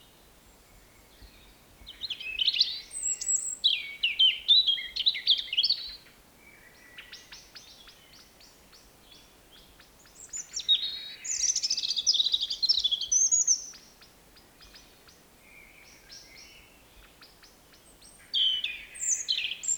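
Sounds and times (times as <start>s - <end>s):
European robin Erithacus rubecula singing: 0.7s - 19.7s.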